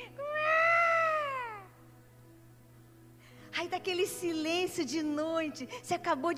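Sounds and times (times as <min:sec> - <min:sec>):
person imitating a newborn baby's cry: 0:00.0 - 0:01.8
speech: 0:03.6 - 0:06.3.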